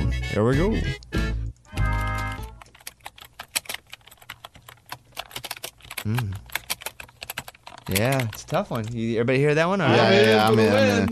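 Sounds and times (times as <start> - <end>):
speech: 0.4 - 1.1, 7.9 - 11.1
typing on a computer keyboard: 1.8 - 9.0.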